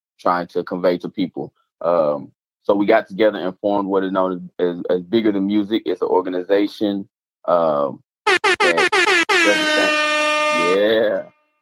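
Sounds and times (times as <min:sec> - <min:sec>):
speech: 0:00.2 - 0:09.9
air horn blasts: 0:08.3 - 0:11.4.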